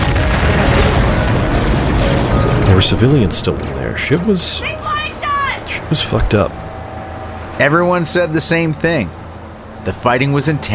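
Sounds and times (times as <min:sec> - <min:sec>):
chain of explosions: 0:00.0 - 0:07.7
speech: 0:02.8 - 0:04.9, 0:05.7 - 0:06.6, 0:07.6 - 0:09.2, 0:09.8 - 0:10.7.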